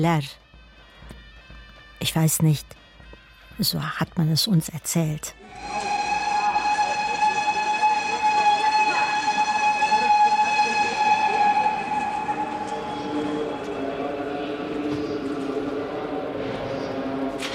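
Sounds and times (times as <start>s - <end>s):
speech: 0.0s - 0.4s, 2.0s - 2.8s, 3.6s - 5.8s
train horn or whistle at a railway station platform: 5.4s - 15.2s
rumbling rail noise of a train: 5.4s - 17.5s.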